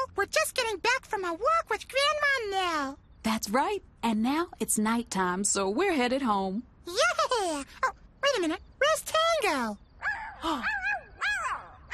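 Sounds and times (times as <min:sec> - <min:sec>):
speech: 0:00.2 - 0:09.8, 0:10.4 - 0:10.8
dog barking with a whiny yelping edge: 0:10.0 - 0:11.9.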